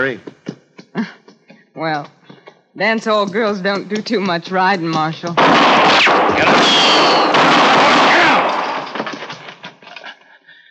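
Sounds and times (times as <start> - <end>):
speech: 0.0 - 0.3, 1.8 - 2.2, 2.8 - 7.6
gunshot in an Old West ambush: 5.4 - 9.4.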